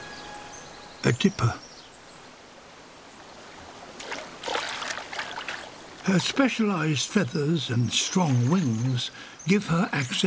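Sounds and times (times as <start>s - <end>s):
speech: 1.0s - 1.7s, 6.0s - 10.2s
fast-flowing stream water rushing and splashing: 2.2s - 10.2s.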